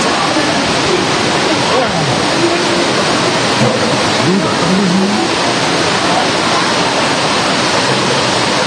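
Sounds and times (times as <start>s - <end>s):
faint voices murmuring: 0.0s - 8.6s
heavy rain pouring: 0.0s - 8.6s.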